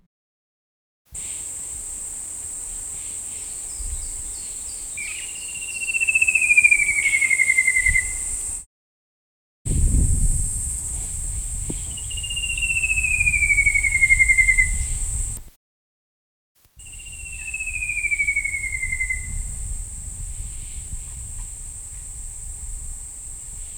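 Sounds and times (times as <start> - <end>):
Eastern Shining Flycatcher Myiagra alecto wardelli calling: 1.2 - 8.6, 9.7 - 15.5, 16.8 - 23.7.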